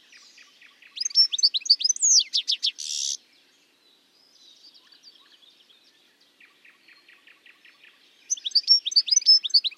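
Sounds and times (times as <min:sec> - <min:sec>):
European goldfinch song, Carduelis carduelis, twittering: 0:00.0 - 0:09.7.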